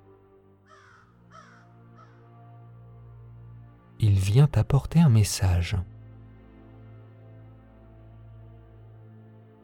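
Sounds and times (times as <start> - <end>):
crow cawing: 0.6 - 2.3
speech: 4.1 - 5.9.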